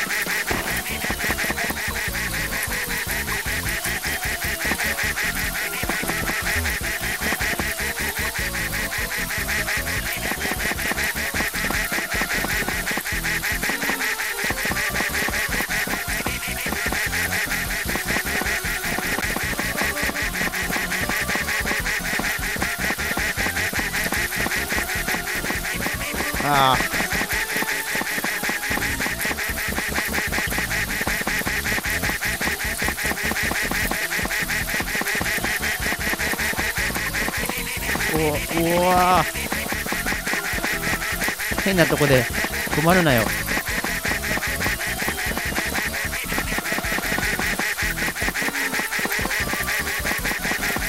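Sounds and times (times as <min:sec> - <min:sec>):
chorus of ducks quacking: 0:00.0 - 0:50.8
speech: 0:41.8 - 0:43.4.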